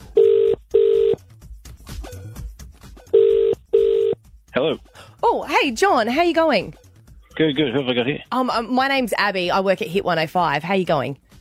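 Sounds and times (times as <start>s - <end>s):
telephone ringback tone: 0.0s - 1.2s, 3.1s - 4.2s
speech: 4.6s - 6.8s, 7.4s - 11.2s.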